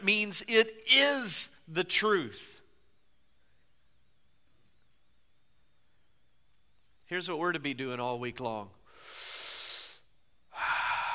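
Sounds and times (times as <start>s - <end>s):
speech: 0.0s - 2.5s, 7.1s - 9.2s
airy breath sounds: 8.8s - 11.1s
deep intake of air: 8.8s - 11.1s.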